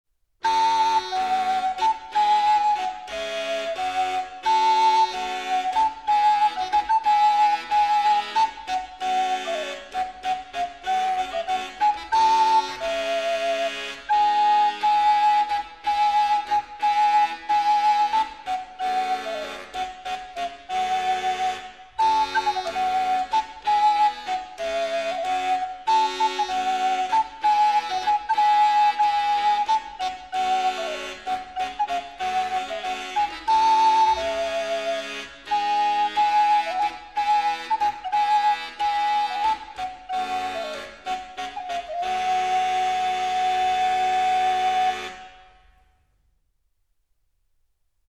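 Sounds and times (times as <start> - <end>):
bassa danza renaissance dance music: 0.4 - 45.7.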